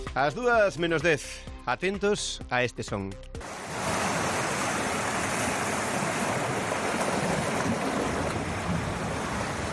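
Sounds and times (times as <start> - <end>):
speech: 0.1 - 3.3
surf from breaking sea waves on the coast during unusually strong tides: 3.4 - 9.7.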